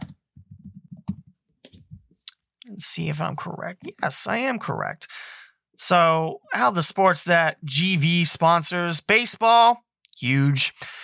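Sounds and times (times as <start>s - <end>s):
typing on a computer keyboard: 0.0s - 1.3s
speech: 2.7s - 11.0s.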